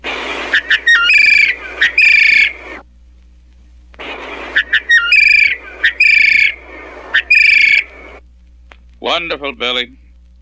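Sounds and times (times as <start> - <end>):
bird whistled warbling call notes imitating a thrush: 0.5 - 2.8, 4.2 - 8.2
speech: 9.2 - 10.0.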